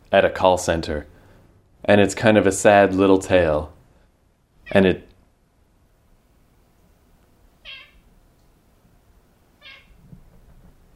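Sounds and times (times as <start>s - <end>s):
quiet low hum: 0.0s - 10.9s
speech: 0.1s - 1.1s, 1.8s - 3.8s, 4.7s - 5.1s
cat meowing in short high-pitched calls: 7.6s - 8.1s, 9.6s - 10.0s.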